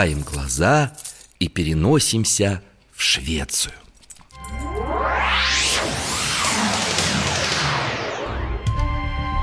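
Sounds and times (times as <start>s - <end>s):
speech: 0.0s - 3.8s
arrow whistling past in a castle courtyard in Sweden: 4.6s - 9.3s.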